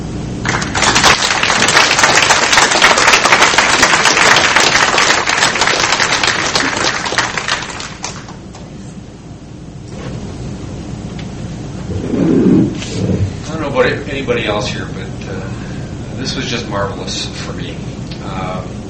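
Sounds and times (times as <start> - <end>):
audience applause for the evening's speakers: 0.4 - 8.4
low murmur: 8.4 - 18.8
speech: 14.2 - 14.9, 16.2 - 18.7.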